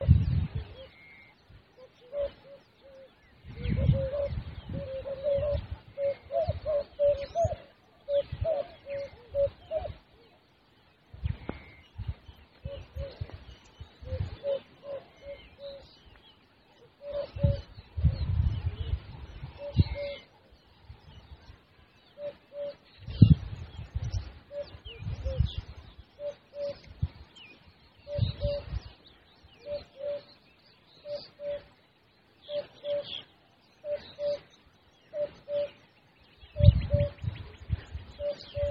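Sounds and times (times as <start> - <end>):
African cuckoo Cuculus gularis: 0.0 - 10.4, 11.1 - 31.8, 32.4 - 38.7.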